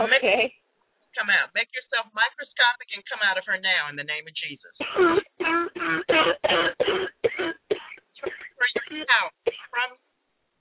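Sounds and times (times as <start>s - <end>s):
speech: 0.1s - 0.6s, 1.2s - 7.6s
woman coughing harshly: 4.8s - 9.8s.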